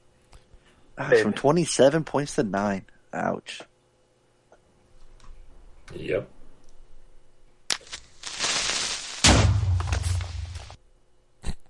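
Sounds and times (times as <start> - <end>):
speech: 1.0 - 3.7, 5.9 - 6.4
video game creeper hissing fuse: 7.7 - 10.8
video game creeper explosion: 9.2 - 10.8.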